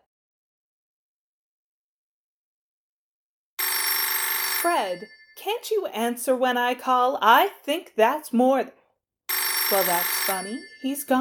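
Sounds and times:
telephone bell ringing: 0:03.6 - 0:05.6, 0:09.3 - 0:11.2
speech: 0:04.6 - 0:08.8, 0:09.7 - 0:11.2.

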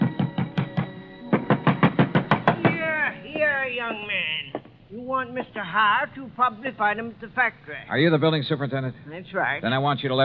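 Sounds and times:
heavy fists pounding on an apartment door in Danbury: 0:00.0 - 0:02.8
speech: 0:03.8 - 0:10.2.

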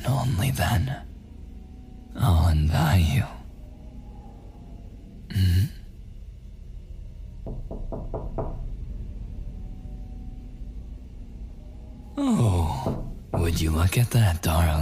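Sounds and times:
low rumble: 0:00.0 - 0:14.8
speech: 0:00.3 - 0:01.1, 0:02.2 - 0:03.4, 0:13.6 - 0:14.8
knocking on a door: 0:07.4 - 0:08.8, 0:12.7 - 0:14.0.

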